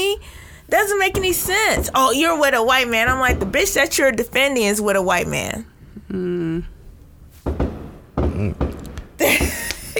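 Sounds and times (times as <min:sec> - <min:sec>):
speech: 0:00.2 - 0:06.7
fireworks popping and banging outside on the 4th of July: 0:00.9 - 0:04.7, 0:07.4 - 0:09.9.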